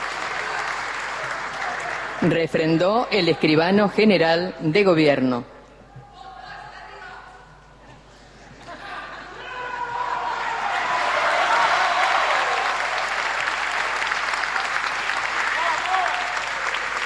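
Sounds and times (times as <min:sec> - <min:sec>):
large crowd applauding: 0:00.0 - 0:02.4, 0:10.1 - 0:17.0
speech: 0:02.2 - 0:05.5
laughter: 0:07.9 - 0:11.6.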